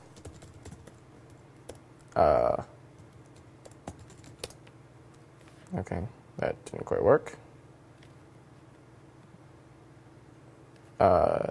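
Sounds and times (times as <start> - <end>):
keystrokes on a computer keyboard typing a web address: 0.0 - 2.2, 3.0 - 4.6
speech: 2.2 - 2.7, 5.7 - 7.4, 11.0 - 11.4.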